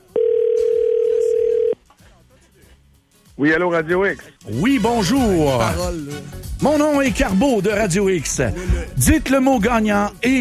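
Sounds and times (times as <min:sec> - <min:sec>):
telephone ring tone on the line during a call to a radio contest line: 0:00.1 - 0:01.8
speech: 0:03.4 - 0:10.4.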